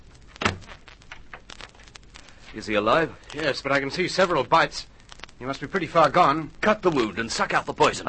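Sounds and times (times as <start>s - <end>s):
door pushed shut with a solid thud: 0.4s - 0.7s
speech: 2.6s - 8.0s.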